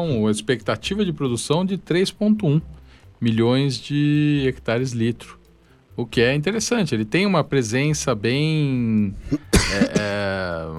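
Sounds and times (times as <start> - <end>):
speech: 0.0 - 5.4, 6.0 - 10.7
person coughing: 9.2 - 10.3
throat clearing: 9.2 - 10.4.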